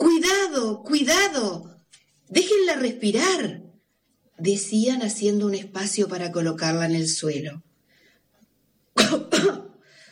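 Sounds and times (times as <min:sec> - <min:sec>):
speech: 0:00.7 - 0:01.7, 0:02.3 - 0:03.6, 0:04.4 - 0:07.7, 0:09.0 - 0:09.6
person imitating raspy coughs of a rescued turtle: 0:09.0 - 0:09.8
faint short wheezy trail: 0:09.7 - 0:10.1.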